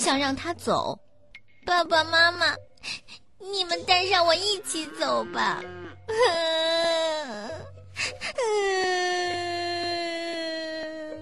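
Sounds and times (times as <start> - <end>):
speech: 0.0 - 9.4
child sobbing: 6.1 - 11.2.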